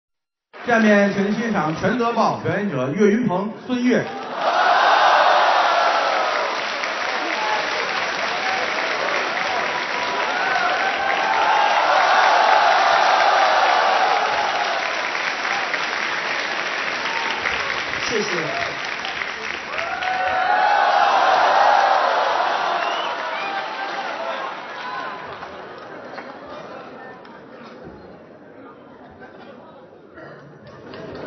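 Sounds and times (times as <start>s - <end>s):
speech: 0.7s - 4.5s
scattered cheers: 4.1s - 25.6s
loud applause from a large audience: 4.1s - 27.0s.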